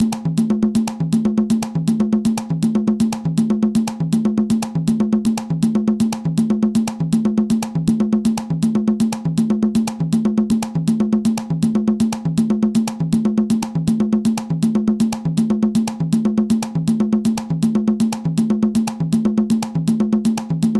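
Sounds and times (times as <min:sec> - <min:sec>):
Columbia rumba tumba drumming from Havana: 0:00.0 - 0:20.7.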